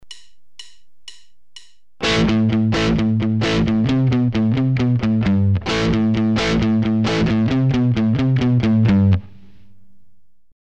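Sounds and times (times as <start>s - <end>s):
palm-muted hard-rock guitar riff: 2.0s - 9.7s.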